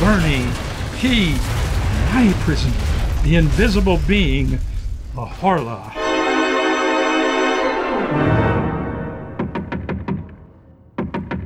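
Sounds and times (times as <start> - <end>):
speech: 0.1 - 6.0
swelling orchestral chord: 6.0 - 10.1.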